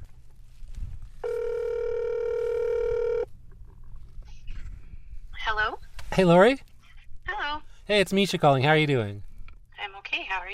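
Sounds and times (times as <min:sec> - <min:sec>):
electronic ringback tone of a phone call ringing out: 0:01.2 - 0:03.3
speech: 0:06.2 - 0:06.7, 0:07.9 - 0:09.3.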